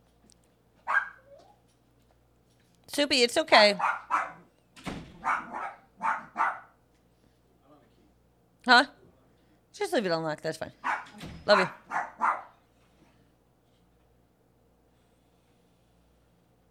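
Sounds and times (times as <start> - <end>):
dog barking loudly and excitedly: 0.8 - 1.6, 3.8 - 4.5, 5.2 - 6.8, 10.8 - 12.6
speech: 2.9 - 4.1, 8.7 - 9.0, 9.8 - 11.8.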